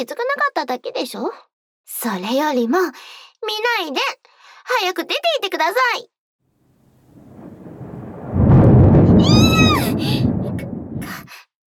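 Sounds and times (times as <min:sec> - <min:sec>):
speech: 0:00.0 - 0:06.1
deep rolling rumble of thunder: 0:06.8 - 0:11.3.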